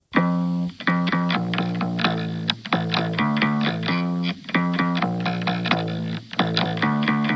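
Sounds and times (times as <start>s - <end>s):
evil bass: 0.0s - 7.3s.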